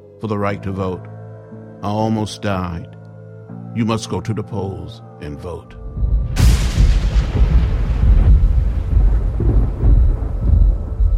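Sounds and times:
speech: 0.2s - 1.1s, 1.8s - 3.0s, 3.7s - 6.1s
thunder crack rolling into a deep sustained rumble: 5.8s - 11.1s.

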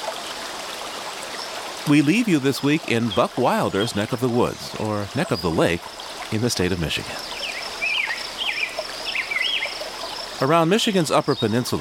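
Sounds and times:
bird singing warbling phrases on a Lake Superior shoreline: 1.4s - 11.7s
speech: 1.8s - 7.4s, 10.4s - 11.7s
insects on a Lake Superior shoreline: 2.6s - 11.7s.

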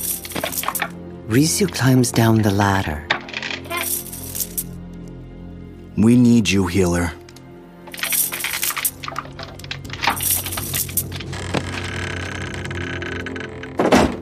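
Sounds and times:
wooden trap door creaking and rattling as it is lowered: 0.0s - 4.6s, 7.8s - 14.2s
speech: 0.4s - 3.1s, 6.0s - 7.2s.

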